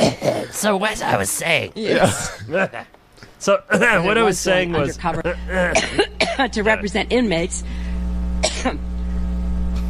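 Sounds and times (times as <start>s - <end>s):
coughing or sneezing burst: 0.0s - 0.6s, 5.4s - 6.5s, 8.4s - 8.9s
steady low electrical hum: 0.0s - 9.8s
speech: 0.6s - 7.8s, 8.6s - 8.9s.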